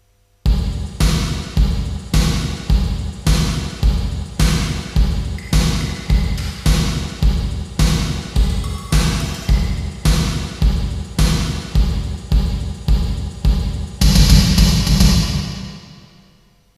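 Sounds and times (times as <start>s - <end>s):
drums in a hall: 0.5s - 16.2s.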